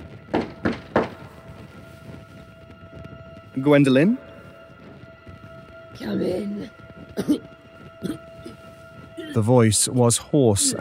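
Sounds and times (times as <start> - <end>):
knuckles rapping on a wooden door in a hallway: 0.3 - 1.2
speech: 3.6 - 4.2, 6.0 - 7.5, 9.4 - 10.7.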